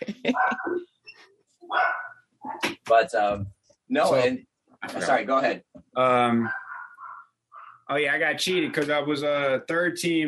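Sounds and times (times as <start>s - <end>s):
speech: 0.3s - 0.6s, 2.9s - 6.6s, 7.9s - 10.2s
dogs barking: 0.3s - 0.8s, 1.7s - 2.7s, 6.3s - 7.9s
dog yipping: 0.4s - 0.8s, 1.7s - 2.6s, 6.4s - 7.8s.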